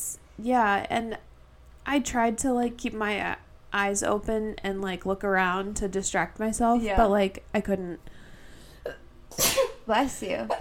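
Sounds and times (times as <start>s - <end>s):
speech: 0.4s - 8.2s, 9.9s - 10.6s
person sneezing: 9.3s - 9.8s.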